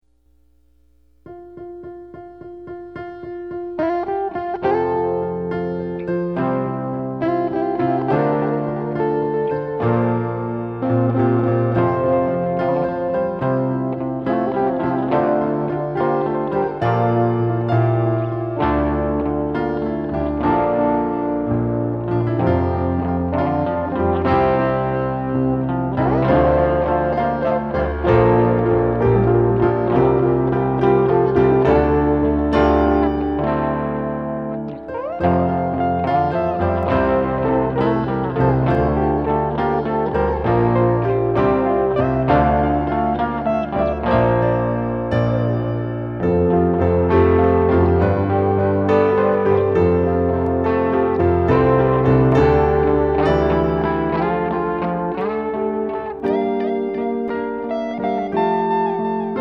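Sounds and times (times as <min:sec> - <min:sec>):
detached piano notes: 0:00.0 - 0:59.3
guitar: 0:00.0 - 0:59.3.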